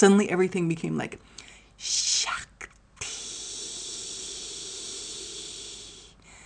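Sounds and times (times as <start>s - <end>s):
speech: 0.0s - 3.1s
person imitating a snake with a breathy hiss: 3.0s - 6.2s.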